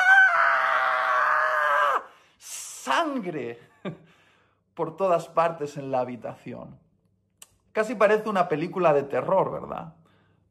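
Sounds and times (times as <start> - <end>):
child screaming in pain: 0.0 - 2.1
speech: 3.0 - 4.2, 4.8 - 6.8, 7.8 - 10.0.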